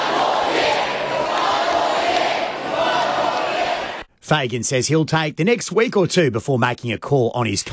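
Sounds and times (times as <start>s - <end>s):
large crowd of football supporters chanting at a premiership parade: 0.0s - 4.1s
speech: 4.3s - 7.7s.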